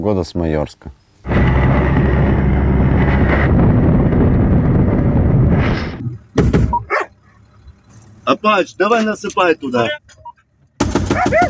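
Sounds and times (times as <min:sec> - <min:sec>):
speech: 0:00.0 - 0:01.4, 0:08.4 - 0:10.1
loud steady rumbling: 0:01.2 - 0:06.8
dog barking: 0:06.8 - 0:07.2, 0:11.1 - 0:11.4.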